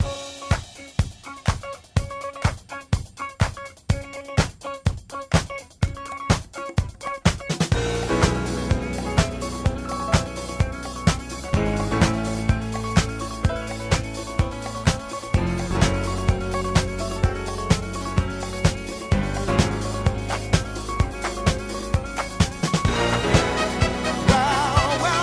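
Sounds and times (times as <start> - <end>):
free spins music loop: 0.0 - 25.2.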